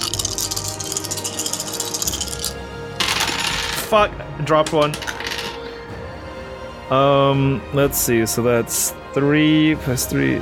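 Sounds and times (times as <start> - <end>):
single die rolled for damage in a game rattling on a hard tabletop: 0.0 - 3.9, 4.7 - 5.6
speech: 3.9 - 5.1, 6.9 - 10.3.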